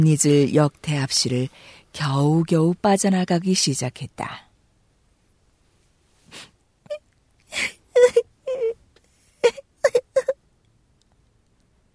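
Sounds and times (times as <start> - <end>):
speech: 0.0 - 4.5
young granddaughter sobbing on grandmother's lap: 7.5 - 8.8, 9.4 - 10.4.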